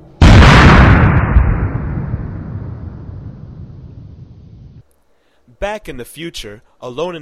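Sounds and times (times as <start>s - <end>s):
bomb explosion: 0.2s - 4.8s
speech: 5.6s - 7.2s.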